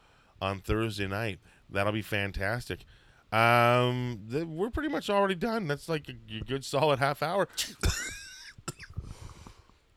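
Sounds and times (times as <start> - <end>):
speech: 0.4 - 8.0
person coughing: 7.6 - 9.1.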